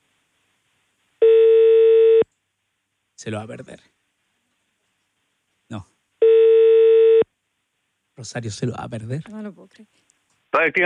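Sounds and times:
telephone ringback tone while placing a call: 1.2 - 2.2, 6.2 - 7.2
speech: 3.2 - 4.0, 5.7 - 5.9, 8.2 - 10.8.

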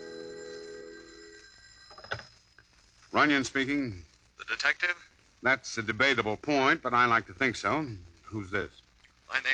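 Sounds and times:
telephone bell ringing with a buzzing tone: 0.0 - 2.6
speech: 3.1 - 9.5.

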